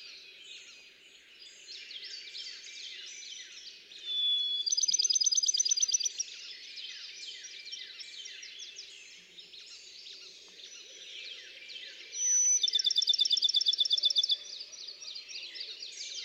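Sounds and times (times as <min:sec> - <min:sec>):
other birds chirping softly: 0:00.0 - 0:16.2
Bachman's sparrow singing a whistle and high-pitched trill: 0:04.1 - 0:06.2, 0:12.2 - 0:14.4.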